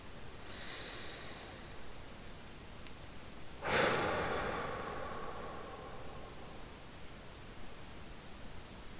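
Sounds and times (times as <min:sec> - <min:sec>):
steady low hiss: 0:00.0 - 0:08.3
deep breath in and out: 0:00.4 - 0:02.1, 0:03.6 - 0:07.5.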